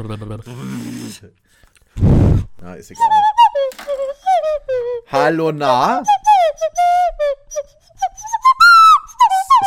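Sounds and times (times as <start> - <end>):
speech: 0.0 - 4.1, 5.1 - 6.8
person whistling a bouncy little tune: 3.0 - 5.0, 6.0 - 9.6.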